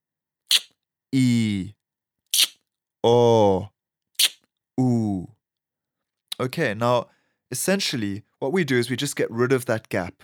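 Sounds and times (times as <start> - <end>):
sharp lateral tongue clicks: 0.5 - 0.7, 2.4 - 2.6, 4.2 - 4.4
speech: 1.1 - 4.9, 6.4 - 10.2
drawn-out breathy exhaled vowel: 1.2 - 1.8, 2.4 - 3.7, 4.8 - 5.4.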